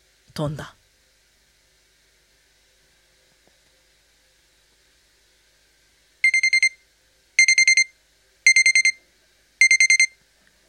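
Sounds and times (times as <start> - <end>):
speech: 0.4 - 0.8
alarm clock beeping in rapid high-pitched pips: 6.2 - 6.8, 7.4 - 7.9, 8.5 - 9.0, 9.6 - 10.1.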